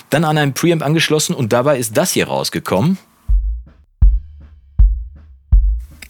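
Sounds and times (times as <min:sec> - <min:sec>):
speech: 0:00.1 - 0:03.1
bass drum hits recorded through a speaker-cone microphone: 0:03.3 - 0:06.0.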